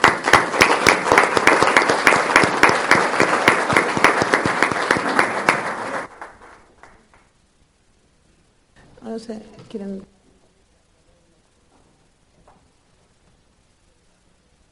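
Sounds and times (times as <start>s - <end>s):
audience in a hall applauding: 0.0s - 7.3s
speech: 9.3s - 10.2s.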